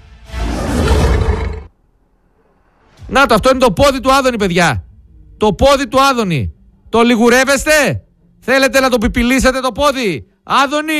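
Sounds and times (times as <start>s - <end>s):
lion roaring: 0.4s - 1.7s
speech: 3.1s - 10.9s.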